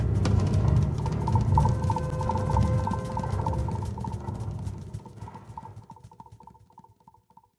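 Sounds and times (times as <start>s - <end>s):
cajon drumming: 0.2s - 6.3s.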